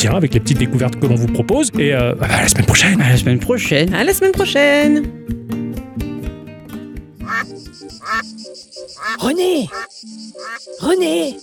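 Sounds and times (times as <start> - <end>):
speech: 0.0 - 5.6, 7.7 - 11.4
ducks quacking: 7.2 - 11.4.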